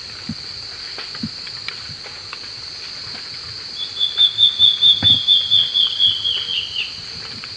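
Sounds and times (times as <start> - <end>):
insects buzzing: 0.0 - 7.5
Black-faced Antbird singing, subspecies elegans: 3.8 - 7.0.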